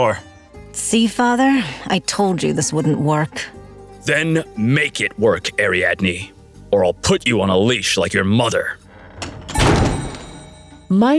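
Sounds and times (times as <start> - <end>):
speech: 0.0 - 8.8, 10.9 - 11.1
door creaking: 8.4 - 10.9
heavy door swinging shut with a thud: 9.0 - 10.7.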